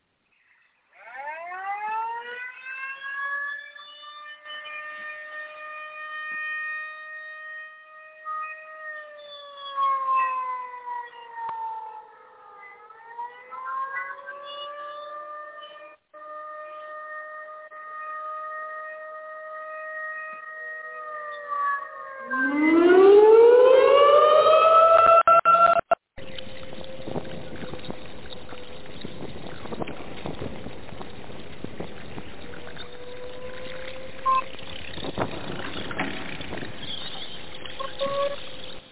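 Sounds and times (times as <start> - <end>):
alarm siren wailing: 0.9 - 38.8.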